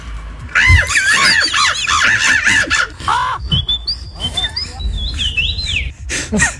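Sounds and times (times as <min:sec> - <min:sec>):
person imitating bird calls into a microphone at a bird-imitation championship: 0:00.7 - 0:02.0
laughter: 0:00.8 - 0:03.4, 0:04.2 - 0:06.5.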